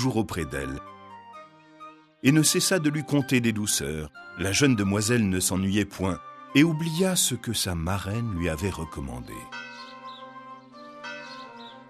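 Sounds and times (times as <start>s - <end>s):
speech: 0.0s - 1.0s, 2.2s - 9.7s
bell striking midnight: 9.5s - 11.8s.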